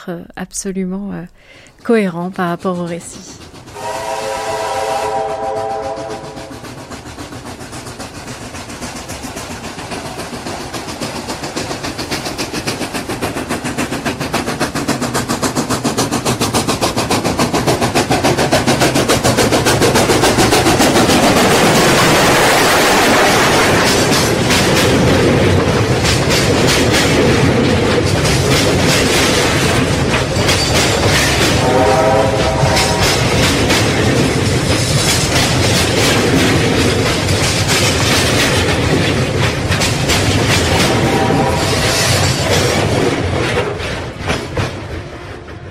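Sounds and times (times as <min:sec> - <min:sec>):
speech: 0:00.0 - 0:03.6
heavy steady rumble of rail cars rolling past: 0:01.6 - 0:45.6
train whistle: 0:03.7 - 0:06.6, 0:31.2 - 0:33.6, 0:40.7 - 0:42.2.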